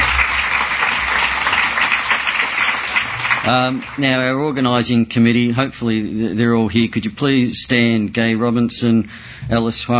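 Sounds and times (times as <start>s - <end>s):
audience applause: 0.0s - 4.3s
speech: 3.4s - 9.9s.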